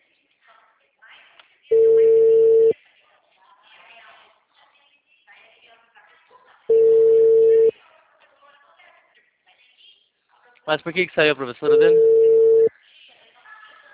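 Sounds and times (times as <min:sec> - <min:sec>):
ringback tone of a phone call being placed: 0:01.7 - 0:02.7, 0:06.7 - 0:07.7, 0:11.7 - 0:12.7
speech: 0:10.7 - 0:12.1.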